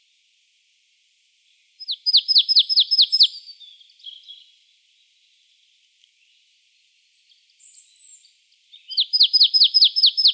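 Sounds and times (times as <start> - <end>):
Marsh tit Poecile palustris singing bright descending notes: 1.8 - 4.5, 7.6 - 10.3.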